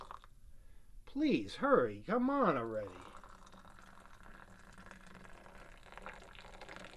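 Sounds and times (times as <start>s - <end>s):
tea pouring into cups: 0.0s - 0.3s, 2.6s - 6.9s
speech: 1.2s - 3.1s.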